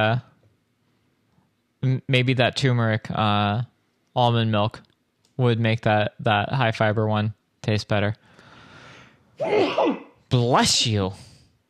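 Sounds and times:
speech: 0:00.0 - 0:00.3, 0:01.8 - 0:08.3, 0:09.4 - 0:11.3
loud sneeze: 0:09.4 - 0:10.2.

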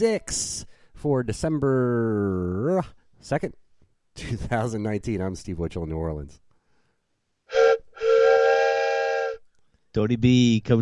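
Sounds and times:
speech: 0:00.0 - 0:03.6, 0:04.2 - 0:06.4, 0:10.0 - 0:10.8
imitated train whistle: 0:07.5 - 0:09.4.

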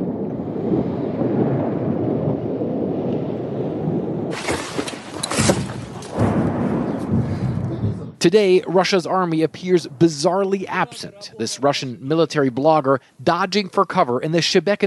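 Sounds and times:
artillery rockets fired from a distance: 0:00.0 - 0:08.2
wind-buffeted rumble: 0:00.0 - 0:09.1
speech: 0:08.2 - 0:14.8.

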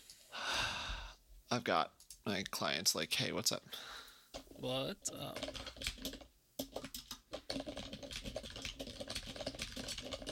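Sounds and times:
speech: 0:01.5 - 0:04.0, 0:04.6 - 0:06.3
typing on a computer keyboard: 0:05.2 - 0:10.3.

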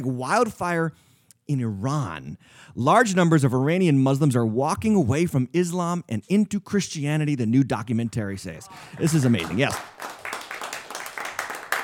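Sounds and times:
speech: 0:00.0 - 0:10.2
audience group clapping: 0:08.7 - 0:11.8.

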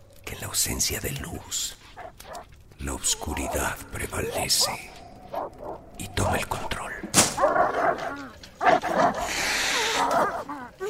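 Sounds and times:
speech: 0:00.3 - 0:05.0, 0:06.0 - 0:08.3
dogs barking and yelping: 0:01.9 - 0:02.6, 0:03.2 - 0:06.0, 0:07.3 - 0:10.8
dogs whimpering: 0:03.1 - 0:05.8, 0:07.4 - 0:10.8.

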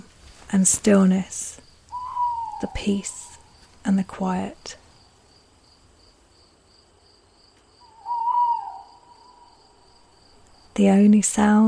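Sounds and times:
speech: 0:00.5 - 0:01.6, 0:02.6 - 0:03.2, 0:03.8 - 0:04.8, 0:10.8 - 0:11.6
faint steady insect chirring: 0:01.6 - 0:03.8, 0:04.8 - 0:10.8
owl hooting at night: 0:01.9 - 0:03.6, 0:07.8 - 0:09.9.

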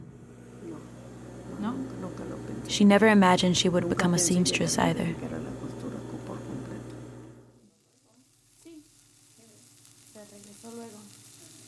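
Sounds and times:
speech: 0:02.7 - 0:05.6
food sizzling as it fries during cooking: 0:05.6 - 0:11.6.

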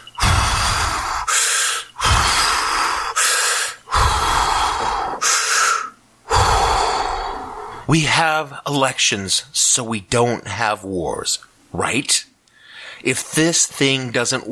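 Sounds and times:
person taking deep breaths: 0:00.0 - 0:08.0, 0:12.5 - 0:13.1
speech: 0:07.9 - 0:12.3, 0:13.0 - 0:14.4.

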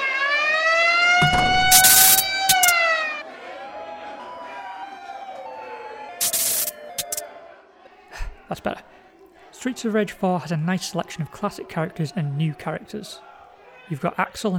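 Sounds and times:
alarm siren wailing: 0:00.0 - 0:03.2, 0:04.1 - 0:07.3
sharp broadband bangs: 0:01.2 - 0:03.2
speech: 0:08.6 - 0:08.9, 0:09.6 - 0:13.3, 0:13.9 - 0:14.5.

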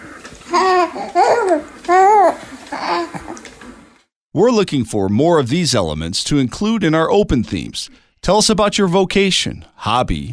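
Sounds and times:
baby babbling and laughing: 0:00.5 - 0:03.4
speech: 0:04.4 - 0:10.3.

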